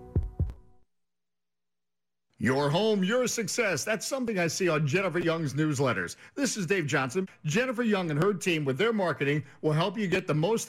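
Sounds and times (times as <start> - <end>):
heartbeat lub-dub thumps: 0.0 - 0.7
speech: 2.4 - 10.6.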